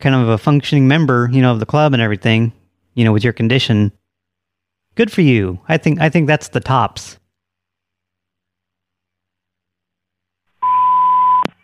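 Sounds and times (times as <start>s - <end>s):
speech: 0.0s - 4.0s, 5.0s - 7.2s
phone call-waiting beep on the line: 10.6s - 11.5s.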